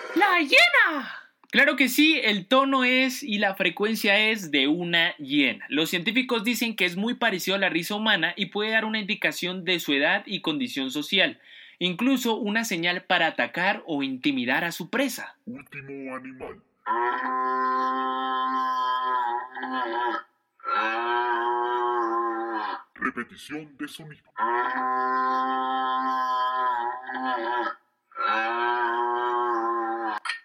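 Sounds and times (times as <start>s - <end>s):
speech: 0.2s - 18.8s, 19.6s - 21.2s, 22.6s - 26.3s, 27.1s - 28.7s
buffalo drawn-out droning bellows: 16.9s - 22.9s, 24.4s - 30.2s.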